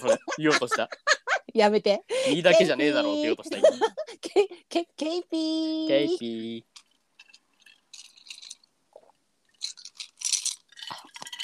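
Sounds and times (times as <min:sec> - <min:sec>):
laughter: 0:00.0 - 0:01.5, 0:02.2 - 0:04.3
speech: 0:00.1 - 0:06.7
ice rattling in a glass of whisky highball: 0:06.7 - 0:11.4.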